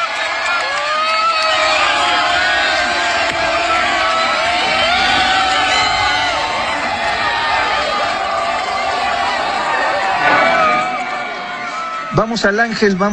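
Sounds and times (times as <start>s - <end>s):
football fans cheering, whooping and chanting in a packed city square at a fan festival: 0.0s - 13.1s.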